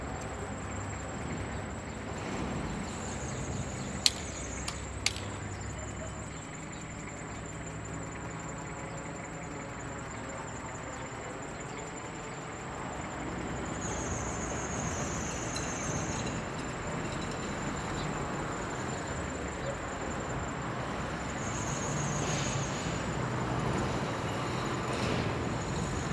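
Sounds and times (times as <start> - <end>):
morning city traffic in Barrio Molino Blanco Rosario Argentina: 0.0 - 26.1.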